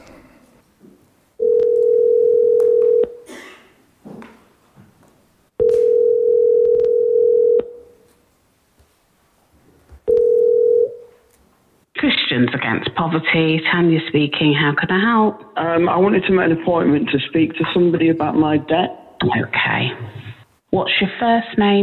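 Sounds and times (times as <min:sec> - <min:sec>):
telephone ringing tone heard down the line: 0:01.4 - 0:03.2, 0:05.6 - 0:08.0, 0:10.1 - 0:11.1
speech: 0:12.6 - 0:20.2, 0:20.8 - 0:21.8.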